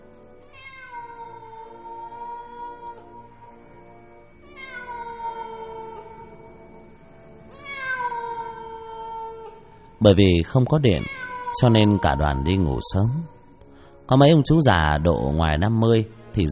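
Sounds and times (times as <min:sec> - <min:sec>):
stray cats yowling mournfully in a cemetery: 0:00.4 - 0:03.3, 0:04.4 - 0:06.6, 0:07.5 - 0:09.8, 0:10.8 - 0:13.5
speech: 0:10.0 - 0:13.4, 0:14.1 - 0:16.5.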